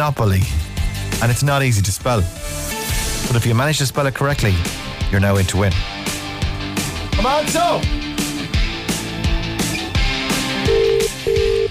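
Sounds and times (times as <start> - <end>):
speech: 0.0 - 6.0, 7.2 - 8.1
upbeat music bed with a thumping beat: 0.0 - 11.6
telephone ringback tone on outgoing call: 10.6 - 11.6.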